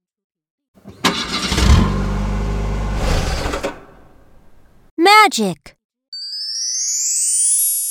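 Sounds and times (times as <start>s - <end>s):
car engine cranking, failing to start: 0.8s - 4.1s
speech: 5.2s - 5.8s.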